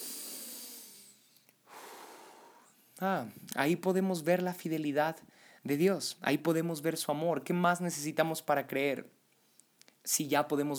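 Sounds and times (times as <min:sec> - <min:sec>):
person breathing slowly during a guided breathing exercise: 0:00.0 - 0:02.9
speech: 0:03.0 - 0:09.2, 0:10.0 - 0:10.7.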